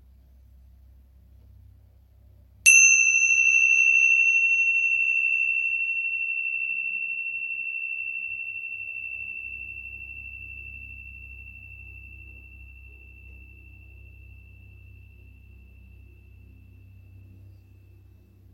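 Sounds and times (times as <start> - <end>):
faint low rumble: 0.0 - 2.6, 8.4 - 18.5
single bell struck and ringing: 2.7 - 12.9.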